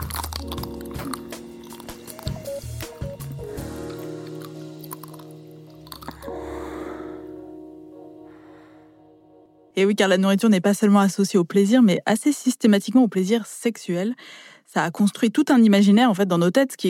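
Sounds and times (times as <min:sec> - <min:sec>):
crisp crunching bite into a chocolate-coated ice cream bar: 0:00.0 - 0:06.4
wet chewing and squishy mouth sounds: 0:00.0 - 0:06.4
speech: 0:09.8 - 0:16.8.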